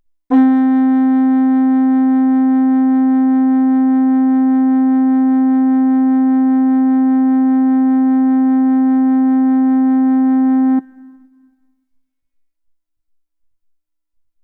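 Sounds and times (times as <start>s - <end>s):
recorder: 0.3s - 11.2s.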